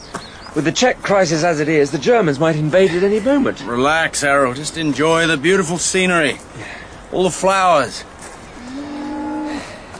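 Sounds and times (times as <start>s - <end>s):
faint outdoor hiss: 0.0s - 9.9s
speech: 0.5s - 8.1s
cow mooing: 8.6s - 9.7s.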